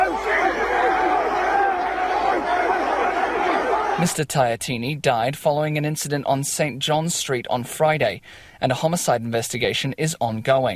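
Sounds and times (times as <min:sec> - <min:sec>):
sharp trademark barking cries of haka performers: 0:00.0 - 0:04.0
hundreds of gang members performing a haka at a funeral: 0:00.0 - 0:04.2
speech: 0:04.0 - 0:10.7.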